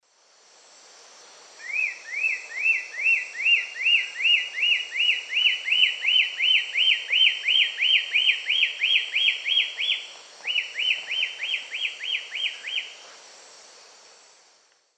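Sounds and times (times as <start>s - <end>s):
Myrmornis torquata song: 1.6s - 13.0s.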